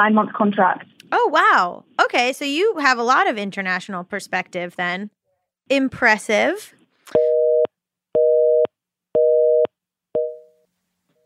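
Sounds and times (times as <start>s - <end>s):
speech: 0.0s - 7.4s
telephone busy signal two-pitch electronic tone: 7.2s - 10.6s.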